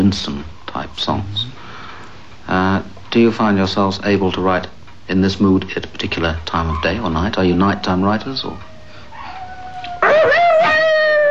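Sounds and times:
speech: 0.1 - 1.5, 2.5 - 8.7
seven-week-old puppy whining and howling: 6.7 - 11.2.

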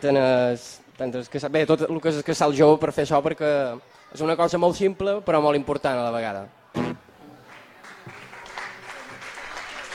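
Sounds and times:
speech: 0.0 - 7.0
audience applauding: 7.5 - 9.9.

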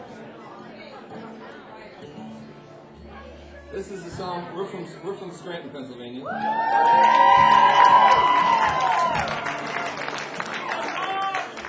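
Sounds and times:
speech: 3.7 - 8.4
crowd clapping: 6.4 - 11.6.

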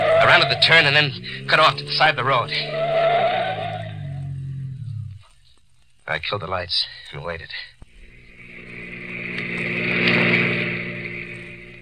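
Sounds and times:
car engine roaring past: 0.0 - 5.2, 8.0 - 11.8
speech: 0.3 - 2.8, 6.1 - 7.7.

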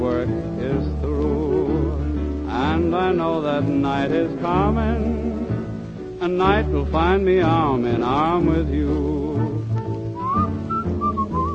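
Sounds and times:
low instrumental backing in a song: 0.0 - 11.5
speech: 3.1 - 5.3, 6.2 - 9.4
person whistling a lilting tune: 9.3 - 11.5.

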